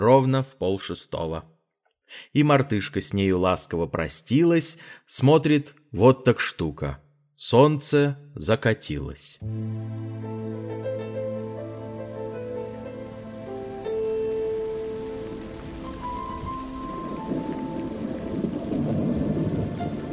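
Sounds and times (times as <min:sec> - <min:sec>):
speech: 0:00.0 - 0:01.5, 0:02.1 - 0:12.2
raindrops pattering on leaves: 0:11.7 - 0:20.1.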